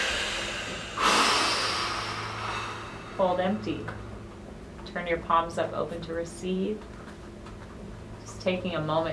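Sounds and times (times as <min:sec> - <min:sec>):
powerful exhale during a guided breathing exercise: 0:00.0 - 0:03.6
speech: 0:03.2 - 0:04.1, 0:04.9 - 0:07.0, 0:08.4 - 0:09.1.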